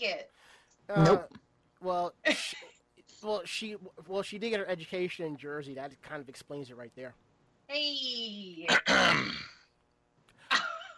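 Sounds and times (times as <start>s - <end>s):
speech: 0.0s - 9.6s
man coughing: 1.0s - 1.3s, 2.3s - 2.7s, 8.7s - 9.5s.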